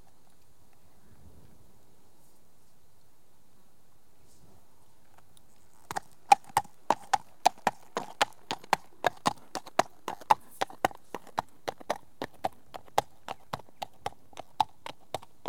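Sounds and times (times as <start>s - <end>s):
horse hoofbeats: 5.5s - 15.4s.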